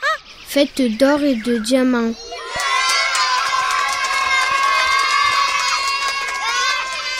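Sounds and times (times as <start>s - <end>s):
speech: 0.5s - 2.4s
excited shouts and high voices: 2.1s - 7.1s
crowd cheering: 2.2s - 7.1s.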